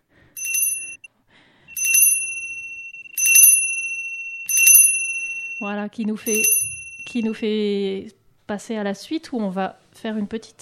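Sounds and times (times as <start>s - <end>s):
small bell ringing in bright high-pitched chimes: 0.4s - 1.1s, 1.8s - 5.7s, 6.3s - 7.4s
speech: 5.6s - 10.6s.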